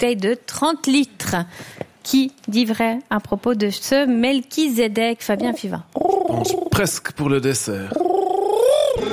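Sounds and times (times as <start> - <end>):
speech: 0.0 - 8.1
man imitating pigeon cooing: 5.4 - 6.9, 7.9 - 9.0.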